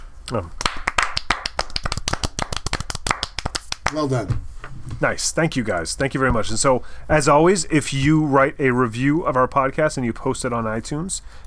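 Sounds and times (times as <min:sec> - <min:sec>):
speech: 0:00.3 - 0:00.6, 0:03.9 - 0:11.4
soft golf clap from a few people: 0:00.3 - 0:04.1.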